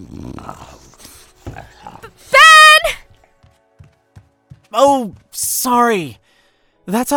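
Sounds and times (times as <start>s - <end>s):
speech: 0.0s - 0.9s, 4.7s - 6.2s, 6.9s - 7.1s
dog growling and snarling: 0.0s - 2.3s.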